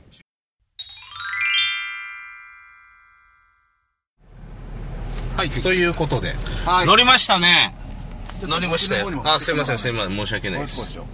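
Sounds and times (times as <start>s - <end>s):
incoming phone call ringtone through a car's FM audio: 0.8s - 3.8s
speech: 5.4s - 7.8s, 8.4s - 11.1s.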